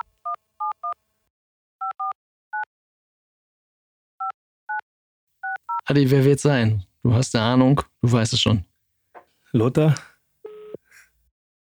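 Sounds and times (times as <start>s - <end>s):
touch-tone telephone dialing beeps: 5.4s - 5.8s, 10.5s - 10.8s
speech: 5.9s - 8.7s, 9.5s - 10.1s.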